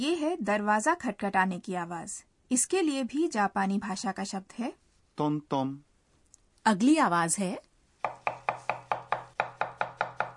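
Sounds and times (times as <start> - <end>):
speech: 0.0 - 5.9, 6.6 - 8.2
knife chopping on a kitchen cutting board: 8.0 - 10.3.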